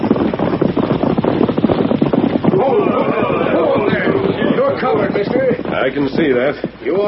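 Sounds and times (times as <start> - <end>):
hoofbeats of several ridden horses: 0.0 - 7.0
voices: 2.4 - 7.0
speech: 5.8 - 7.0.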